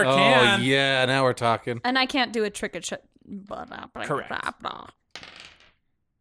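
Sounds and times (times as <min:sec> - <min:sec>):
speech: 0:00.0 - 0:05.5
dice rolling across a tabletop: 0:05.1 - 0:05.8.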